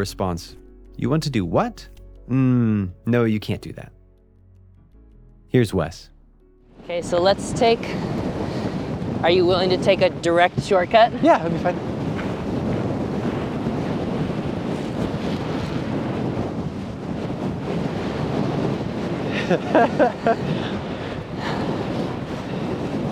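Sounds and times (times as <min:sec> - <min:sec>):
speech: 0:00.0 - 0:04.0, 0:05.5 - 0:06.1, 0:06.9 - 0:08.2, 0:09.2 - 0:11.9, 0:19.5 - 0:20.8
blustery wind buffeting the microphone outdoors by a river: 0:07.0 - 0:23.0.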